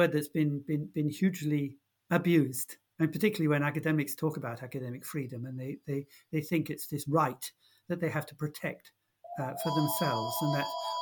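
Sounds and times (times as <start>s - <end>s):
speech: 0.0s - 11.0s
telephone ringing in the background: 9.3s - 11.0s.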